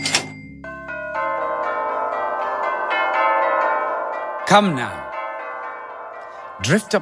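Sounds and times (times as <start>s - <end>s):
several bells ringing in a jangling peal: 0.0s - 7.0s
speech: 4.5s - 5.0s, 6.6s - 7.0s.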